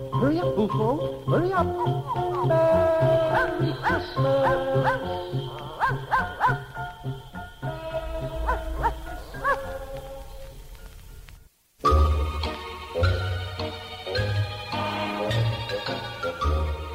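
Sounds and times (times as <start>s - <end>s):
steady tonal musical backing: 0.0s - 16.9s
speech: 0.2s - 6.6s
dog barking: 3.3s - 6.8s, 8.4s - 9.8s.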